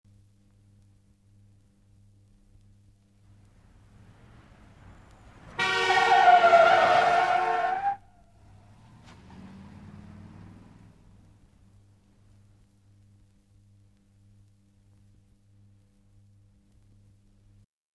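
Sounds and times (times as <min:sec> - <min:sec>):
car braking: 0:04.8 - 0:10.8
car horn: 0:05.4 - 0:08.1.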